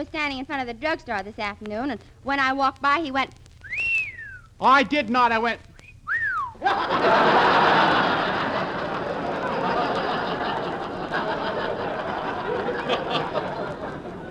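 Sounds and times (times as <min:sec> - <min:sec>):
speech: 0:00.0 - 0:03.4, 0:04.6 - 0:05.7, 0:06.6 - 0:08.0
human wolf whistle at a girl: 0:03.6 - 0:04.6, 0:05.7 - 0:06.6
large crowd laughing: 0:06.4 - 0:14.2.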